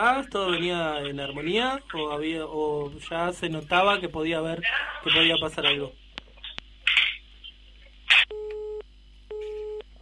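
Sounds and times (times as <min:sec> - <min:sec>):
speech: 0:00.0 - 0:06.0
telephone busy tone after a dropped phone call: 0:08.3 - 0:09.8.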